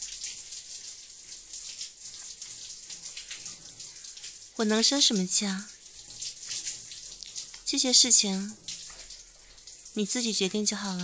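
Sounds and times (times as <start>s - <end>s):
shower water running while someone bathes: 0.0s - 11.0s
speech: 4.6s - 5.8s, 7.7s - 8.7s, 10.0s - 11.0s.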